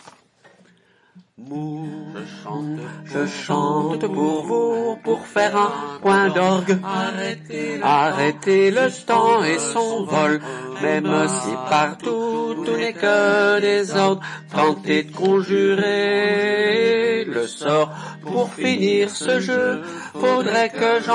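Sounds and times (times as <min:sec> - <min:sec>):
male soprano and alto choir singing a chorale: 0:01.6 - 0:21.1.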